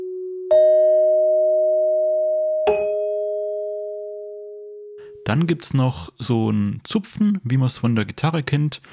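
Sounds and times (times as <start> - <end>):
bell-like sonification tones: 0.0 - 5.3
speech: 5.3 - 8.9.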